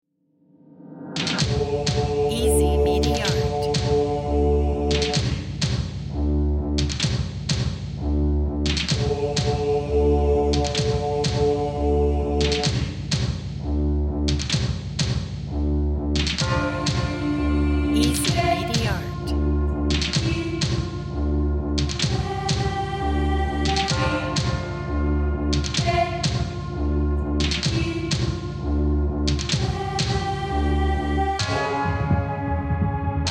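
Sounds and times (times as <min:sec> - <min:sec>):
epic choral trailer music: 0:00.9 - 0:33.2.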